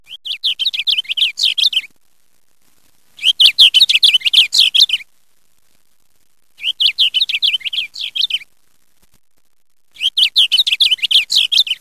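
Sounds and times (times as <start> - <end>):
blue bunting singing: 0.1 - 1.9, 3.2 - 5.1, 6.6 - 8.6, 9.9 - 11.7.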